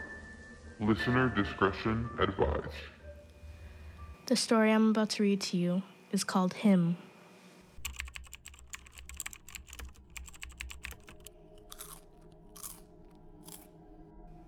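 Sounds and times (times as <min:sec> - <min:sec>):
speech: 0:00.8 - 0:03.0, 0:04.3 - 0:07.1
keyboard typing: 0:07.8 - 0:12.9, 0:13.5 - 0:13.7
crunchy bites of potato chips: 0:08.5 - 0:13.7.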